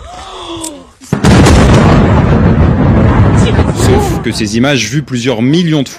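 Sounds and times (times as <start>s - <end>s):
massive explosion blast from missile strike: 1.1s - 5.0s
speech: 4.2s - 5.9s.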